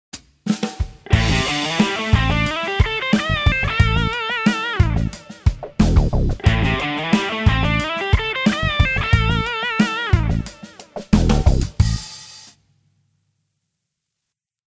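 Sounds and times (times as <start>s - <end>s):
minor pentatonic scale with three notes: 1.1s - 11.8s.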